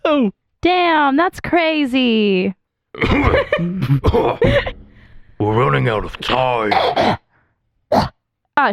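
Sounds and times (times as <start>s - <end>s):
speech: 0.2s - 4.8s, 5.4s - 7.2s, 7.9s - 8.7s
person faking a coughing fit: 3.0s - 4.8s, 6.6s - 7.2s, 7.9s - 8.2s.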